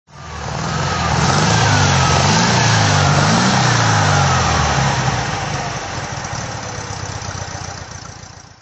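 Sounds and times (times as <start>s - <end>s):
1957 Porsche 356A Speedster 1600 engine throttle revving: 0.1s - 8.1s.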